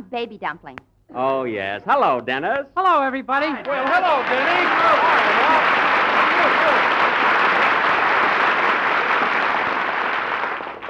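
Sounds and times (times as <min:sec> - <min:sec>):
speech: 0:00.1 - 0:06.9
audience applause greeting a performer returning to a comedy show: 0:03.6 - 0:10.8.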